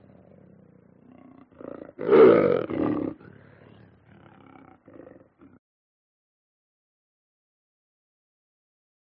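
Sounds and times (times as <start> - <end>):
lion growling and snarling: 0.0 - 5.6.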